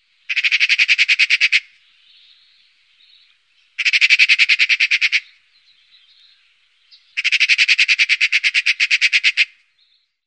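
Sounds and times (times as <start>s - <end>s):
Eurasian magpie Pica pica calling: 0.3s - 1.8s, 3.8s - 5.4s, 7.0s - 9.6s.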